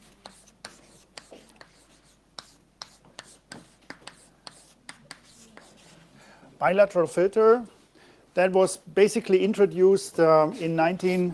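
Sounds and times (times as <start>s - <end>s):
chalk sketching on a blackboard during a lecture: 0.0s - 6.1s, 11.0s - 11.3s
speech: 6.6s - 7.8s, 8.4s - 11.3s.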